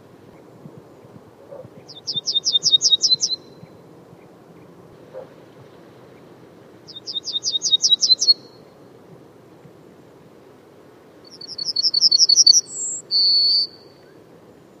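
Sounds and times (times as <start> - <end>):
bird chirping and whistling: 1.9 - 3.4, 6.9 - 8.4, 11.3 - 13.8.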